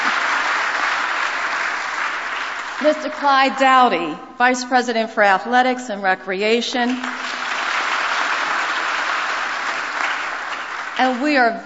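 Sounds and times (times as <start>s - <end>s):
audience applause at a formal event introducing officials: 0.0s - 2.9s, 7.0s - 11.1s
speech: 2.8s - 7.3s, 11.0s - 11.6s.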